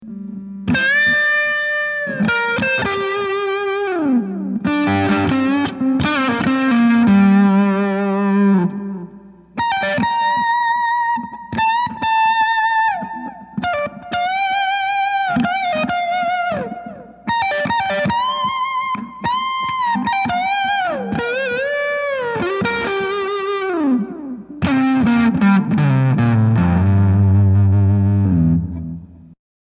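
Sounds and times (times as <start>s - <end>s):
Colorsound effects pedal guitar tone: 0.0s - 29.4s.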